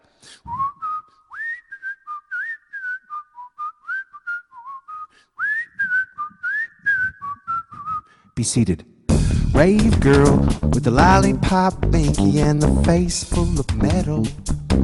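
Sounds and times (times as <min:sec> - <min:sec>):
bright jaunty whistled TV theme tune: 0:00.4 - 0:08.2
speech: 0:08.4 - 0:08.9, 0:09.6 - 0:14.8.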